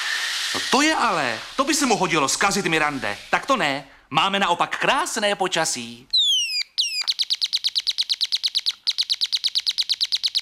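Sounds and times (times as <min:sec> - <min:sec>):
speech: 0:00.6 - 0:06.2
birds singing: 0:06.1 - 0:10.3.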